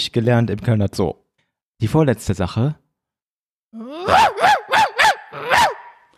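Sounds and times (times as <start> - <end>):
speech: 0.1 - 1.2, 1.8 - 2.8
person imitating a dog barking: 3.8 - 6.1.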